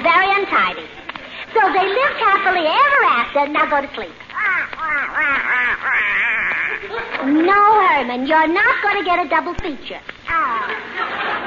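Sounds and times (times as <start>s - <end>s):
laughter: 0.6s - 2.6s, 4.5s - 7.4s, 10.5s - 11.4s
speech: 2.2s - 11.3s
person imitating a duck with buzzy quacking: 4.4s - 6.9s.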